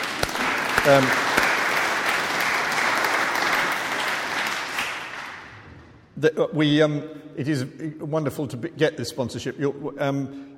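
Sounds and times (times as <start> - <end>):
audience applause: 0.0 - 5.6
speech: 0.8 - 1.2, 6.2 - 10.5.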